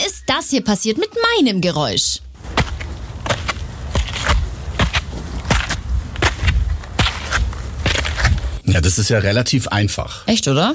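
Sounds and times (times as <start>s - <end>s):
speech: 0.4s - 2.5s, 8.7s - 10.7s
footsteps climbing stairs up a hill: 2.4s - 8.6s.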